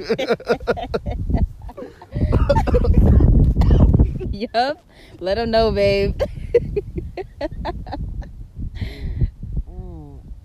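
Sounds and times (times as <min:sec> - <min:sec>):
speech: 0:00.0 - 0:01.1, 0:04.5 - 0:06.4
laughter: 0:00.0 - 0:03.3, 0:06.2 - 0:08.0
noisy breathing: 0:01.8 - 0:02.5, 0:08.7 - 0:09.4
harsh coughing fit: 0:02.3 - 0:04.0.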